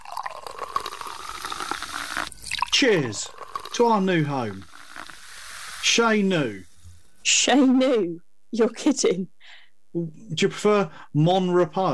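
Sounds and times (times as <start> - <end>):
champagne poured into paper cups: 0.0 - 7.2
speech: 2.8 - 4.7, 5.8 - 9.3, 10.0 - 11.9.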